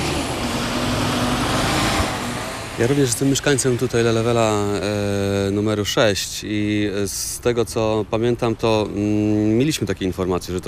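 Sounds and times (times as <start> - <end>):
garbage truck driving away: 0.0 - 4.8
cars arriving: 0.0 - 10.6
speech: 2.8 - 10.6.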